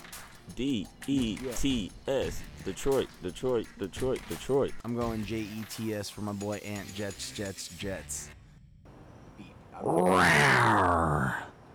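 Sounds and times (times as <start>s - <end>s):
speech: 0.5s - 8.4s, 9.8s - 11.4s
person imitating a big cat's roaring growl: 9.8s - 11.5s.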